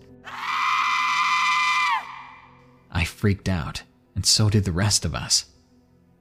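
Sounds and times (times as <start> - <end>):
woman's high-pitched scream echoing out of the woods: 0.2 - 2.5
speech: 3.2 - 5.6.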